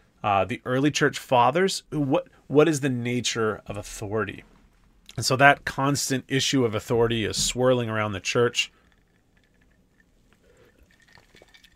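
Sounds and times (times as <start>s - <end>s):
speech: 0.2s - 4.5s, 5.1s - 8.8s
water pouring: 8.6s - 11.7s
person sipping water: 8.7s - 11.7s
small clinks: 8.7s - 11.7s.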